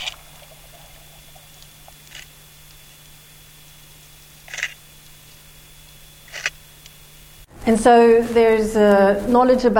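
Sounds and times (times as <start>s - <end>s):
bumphead parrotfish crunching on coral underwater: 0.0s - 5.5s
steady low underwater hum: 0.0s - 9.4s
speech: 7.7s - 9.7s.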